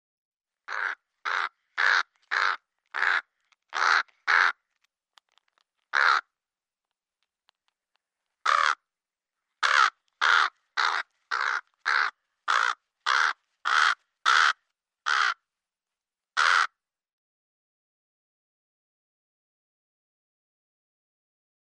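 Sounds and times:
crow cawing: 0.7s - 4.6s, 5.9s - 6.3s, 8.4s - 8.9s, 9.6s - 15.4s, 16.4s - 16.8s.

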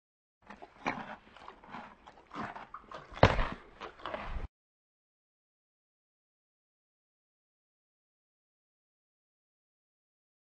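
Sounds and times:
horse chewing a carrot: 0.4s - 4.5s
horse stamping a hoof: 2.4s - 4.4s.

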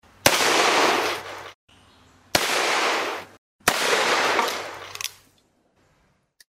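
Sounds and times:
Colt 45 pistol gunshots at various targets: 0.2s - 1.6s, 2.3s - 5.0s.

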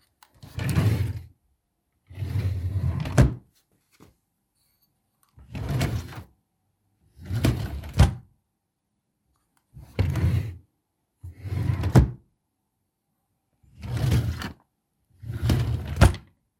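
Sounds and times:
wooden drawers in a sofa: 0.3s - 1.2s, 2.2s - 3.4s, 5.4s - 6.3s, 7.2s - 8.2s, 11.4s - 12.2s, 13.8s - 14.6s, 15.3s - 16.3s.

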